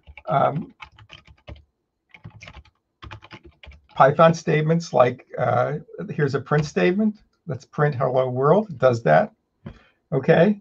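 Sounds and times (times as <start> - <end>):
typing on a computer keyboard: 0.0 - 4.1
speech: 0.3 - 0.8, 4.0 - 9.4, 10.1 - 10.5.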